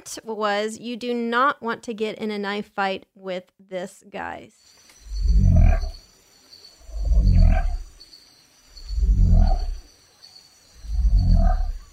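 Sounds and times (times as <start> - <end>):
speech: 0.1 - 4.9
frog that can push its bones through its skin croaking: 5.0 - 6.1, 6.8 - 8.0, 8.7 - 9.9, 10.7 - 11.9.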